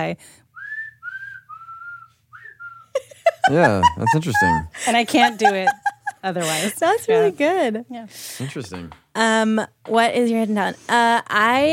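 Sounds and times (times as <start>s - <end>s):
speech: 0.0s - 0.4s, 3.5s - 11.7s
whistling out of the side of the mouth: 0.5s - 3.0s
laughter: 3.0s - 7.4s.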